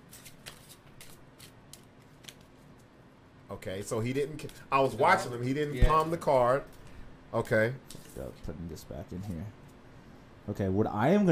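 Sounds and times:
deck of Uno cards being shuffled: 0.0 - 2.9
speech: 3.5 - 9.6, 10.4 - 11.3.

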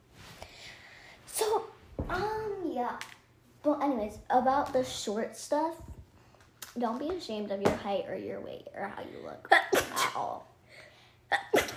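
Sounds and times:
speech: 2.1 - 5.9, 6.8 - 10.5
stifled sneeze: 9.5 - 10.4, 11.3 - 11.7.

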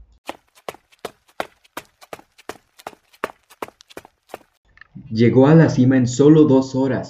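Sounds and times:
quick footsteps crunching up a stone-covered slope at night: 0.2 - 4.6
speech: 5.1 - 7.0.

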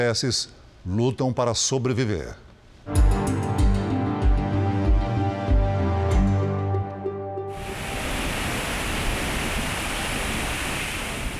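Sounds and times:
speech: 0.0 - 2.5
rhythmic music: 2.9 - 7.2
roar of large Iguaçu waterfalls: 7.5 - 11.3.

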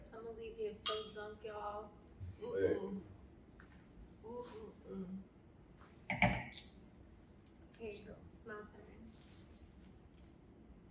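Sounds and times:
speech: 0.2 - 3.2, 4.2 - 5.3, 7.8 - 9.3
glasses clinking in a toast: 0.9 - 1.3.

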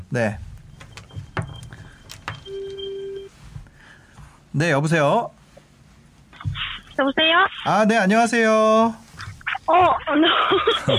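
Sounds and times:
speech: 0.1 - 0.5, 4.5 - 5.4, 7.0 - 9.0, 9.7 - 10.9
telephone line connecting ring tone: 0.9 - 3.3
laughter: 10.1 - 10.9.

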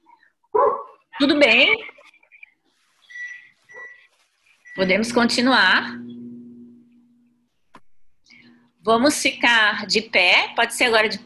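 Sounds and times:
small dog yapping: 0.6 - 1.0
speech: 1.2 - 1.9, 4.8 - 6.2, 8.8 - 11.2.

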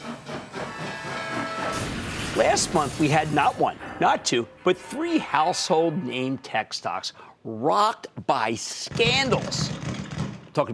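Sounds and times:
steam train chugging and hissing: 0.0 - 3.4
speech: 2.4 - 10.0, 10.6 - 10.7.

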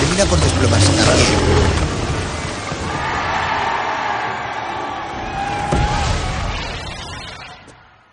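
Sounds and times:
speech: 0.2 - 1.9
large crowd cheering with joy: 2.4 - 8.1.

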